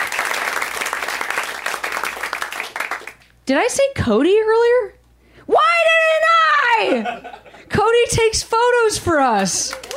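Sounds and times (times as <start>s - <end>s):
audience applause: 0.0s - 3.2s, 9.7s - 9.9s
speech: 3.5s - 5.6s, 6.8s - 9.9s
laughter: 6.8s - 7.7s.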